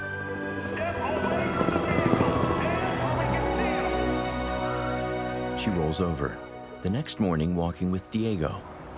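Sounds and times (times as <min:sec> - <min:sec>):
police helicopter flying overhead: 0:00.0 - 0:05.8
speech: 0:05.6 - 0:08.7.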